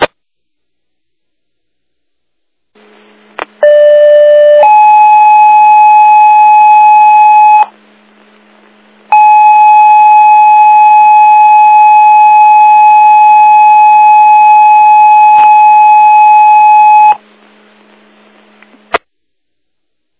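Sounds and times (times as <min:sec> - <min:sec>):
emergency dispatch paging tones: 0:03.6 - 0:07.7, 0:09.1 - 0:17.2.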